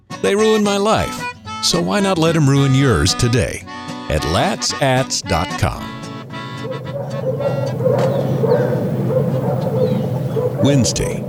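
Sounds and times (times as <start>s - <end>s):
speech: 0.2s - 6.0s, 10.6s - 11.2s
steady low hum of engine or traffic noise: 5.4s - 11.2s
dog barking: 6.0s - 11.2s.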